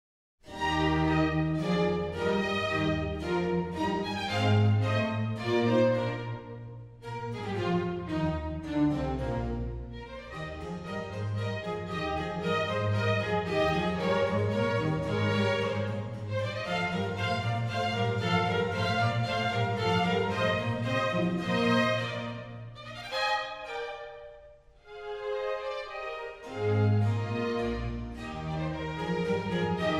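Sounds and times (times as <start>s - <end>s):
horn and string orchestra playing a concerto allegro: 0.5s - 29.9s.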